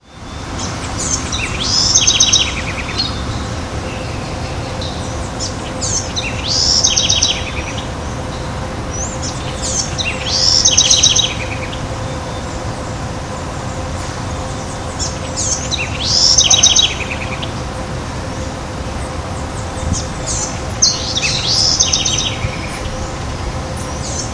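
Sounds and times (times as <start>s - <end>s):
Troglodytes musculus singing: 0.0s - 24.3s.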